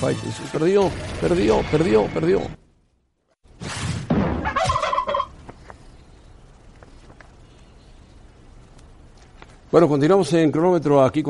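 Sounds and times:
speech: 0.0 - 2.6, 9.7 - 11.2
turkey gobbling: 4.4 - 5.3.

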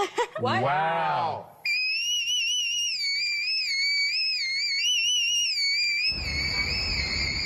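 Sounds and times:
speech: 0.0 - 1.6
high-pitched whistle-register singing: 1.6 - 7.4
burst of broadband noise: 6.1 - 7.4.

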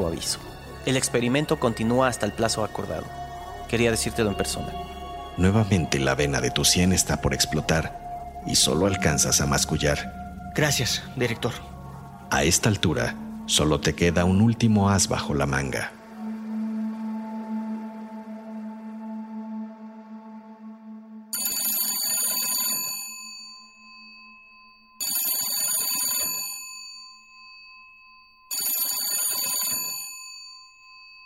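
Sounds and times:
steady droning tone: 0.0 - 21.4
speech: 0.1 - 11.7, 12.3 - 16.0
telephone bell ringing insistently: 21.3 - 31.2.

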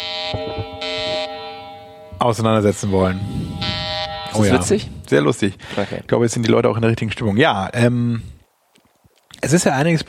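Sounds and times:
loud buzzing electronic alarm: 0.0 - 5.1
speech: 2.2 - 3.7, 4.4 - 8.4, 9.4 - 10.0.

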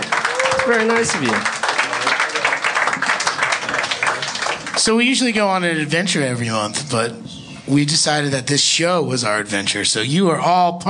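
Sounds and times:
live audience applause: 0.0 - 5.5
speech: 0.7 - 1.6, 4.8 - 10.8.

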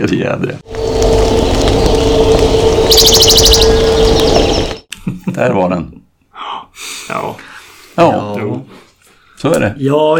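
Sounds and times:
speech: 0.0 - 0.7, 1.8 - 4.6, 5.4 - 8.8, 9.4 - 10.1
electronic hum and static from a radar station: 0.7 - 4.8
Western Bonelli's warbler trilling: 1.4 - 4.8.

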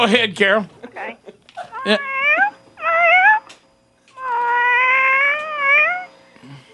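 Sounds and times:
speech: 0.0 - 1.2, 1.8 - 2.2
cat meowing: 1.7 - 3.6, 4.2 - 6.1.

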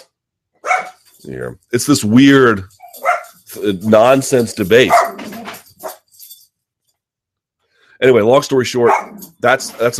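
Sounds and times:
speech: 1.2 - 2.8, 3.6 - 5.1, 8.0 - 9.9
dog yelping barks and whines: 2.8 - 3.4, 4.9 - 6.0.

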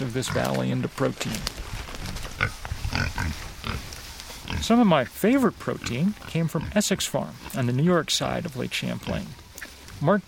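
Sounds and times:
speech: 0.2 - 1.6, 2.4 - 3.4, 4.6 - 9.4, 10.0 - 10.2
pig snorting and grunting: 2.4 - 3.8, 4.4 - 4.8, 5.8 - 7.7.

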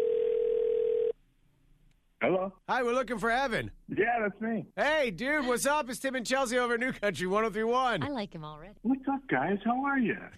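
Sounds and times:
telephone dial tone while placing a call: 0.0 - 1.2
speech: 2.3 - 10.3.

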